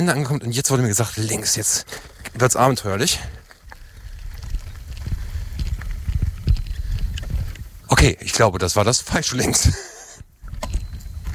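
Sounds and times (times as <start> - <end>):
speech: 0.0 - 3.5, 8.0 - 10.0
horse hooves thudding on soft ground in a paddock: 1.3 - 8.1, 10.2 - 11.3.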